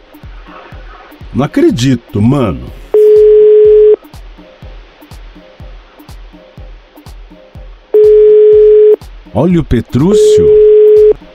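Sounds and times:
speech: 1.4s - 2.8s, 9.4s - 10.6s
unanswered phone call ringing tone: 3.0s - 4.0s, 8.0s - 9.0s, 10.2s - 11.2s
low regular thumping beat: 10.0s - 11.2s.

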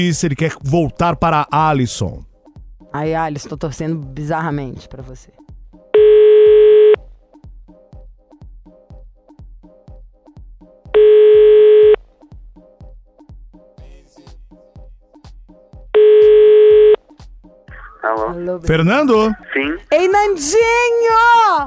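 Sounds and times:
speech: 0.0s - 2.3s, 2.9s - 5.4s, 18.0s - 21.6s
telephone ringback tones: 6.0s - 7.0s, 11.0s - 12.0s, 16.0s - 17.0s.

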